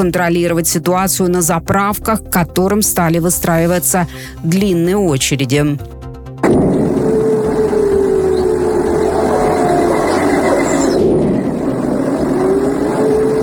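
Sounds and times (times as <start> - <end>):
speech: 0.0 - 6.8
explosion booms in the morning: 6.4 - 7.6
continuous heavy rumbling roar: 6.4 - 13.4.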